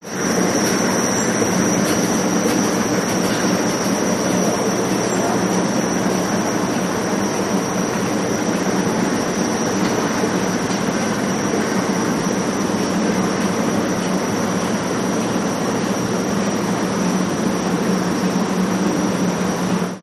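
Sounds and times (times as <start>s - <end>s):
industrial escalator running during a ride: 0.0s - 20.0s.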